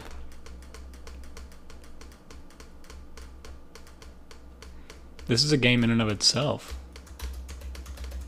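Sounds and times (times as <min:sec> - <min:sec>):
low hum: 0:00.0 - 0:08.2
rapid computer keyboard clicking: 0:00.0 - 0:08.2
speech: 0:05.3 - 0:06.8.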